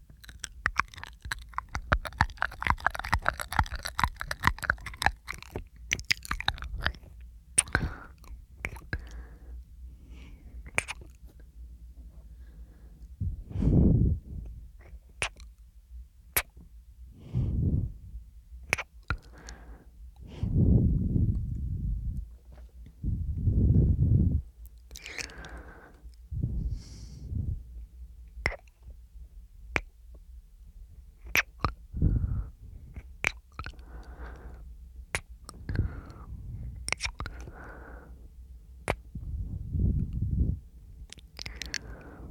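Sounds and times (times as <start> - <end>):
soft wet mouth clicks and smacks: 0.0 - 9.3, 10.6 - 11.3, 13.2 - 15.6, 16.3 - 16.6, 18.6 - 27.7, 28.3 - 28.9, 29.7 - 30.0, 31.2 - 38.0, 38.8 - 42.2
low breaths: 7.6 - 15.0, 17.0 - 18.3, 19.1 - 27.8, 31.9 - 34.9, 35.5 - 42.2.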